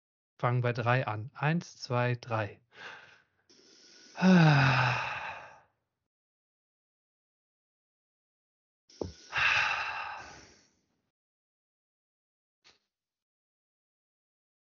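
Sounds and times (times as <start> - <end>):
speech: 0.4 - 3.0, 4.2 - 5.2
loud deep breathing during a guided breathing exercise: 2.7 - 5.6, 9.0 - 10.8.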